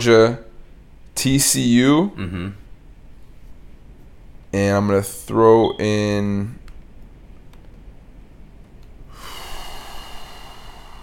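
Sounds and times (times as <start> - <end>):
speech: 0.0 - 0.4, 1.2 - 2.6, 4.5 - 6.6
person breathing right on a microphone: 9.1 - 11.0.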